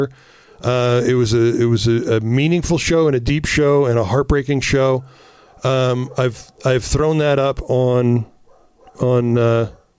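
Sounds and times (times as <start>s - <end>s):
speech: 0.0s - 8.3s, 9.0s - 9.8s
dog barking and whining: 4.9s - 7.4s, 8.3s - 9.9s.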